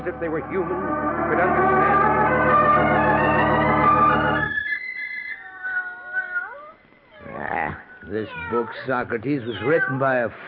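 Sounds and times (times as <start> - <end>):
speech: 0.0 - 3.6, 8.1 - 10.4
dense steady droning: 0.0 - 4.5
cat meowing: 4.7 - 10.3.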